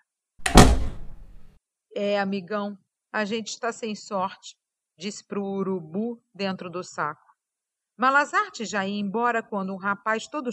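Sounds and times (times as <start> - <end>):
door slamming shut: 0.4 - 1.5
speech: 2.0 - 7.2, 8.0 - 10.5.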